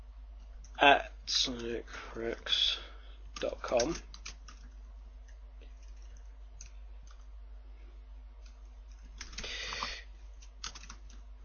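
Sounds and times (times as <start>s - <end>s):
low hum: 0.0s - 11.4s
speech: 0.8s - 4.2s
typing on a computer keyboard: 3.4s - 4.8s, 5.7s - 7.2s, 8.4s - 9.8s, 10.4s - 11.3s.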